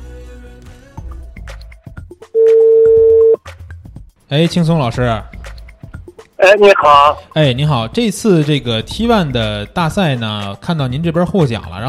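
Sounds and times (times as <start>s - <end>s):
telephone ringback tone as a phone call is placed: 2.4s - 3.4s
speech: 4.3s - 5.4s, 6.4s - 11.8s
quieter mixed sounds: 6.4s - 7.2s.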